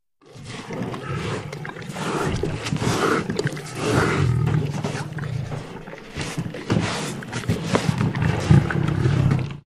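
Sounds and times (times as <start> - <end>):
lion licking a trainer: 0.2 - 9.5.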